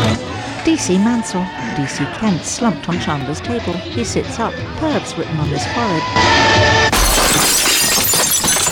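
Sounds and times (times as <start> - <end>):
speech: 0.2 - 6.7
door pane glass smashing: 6.9 - 8.6.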